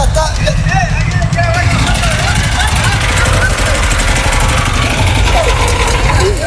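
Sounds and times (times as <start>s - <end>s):
boat motor droning with a rattling vibration: 0.0s - 6.4s
faint voices: 0.0s - 6.4s
laughter: 0.0s - 6.4s.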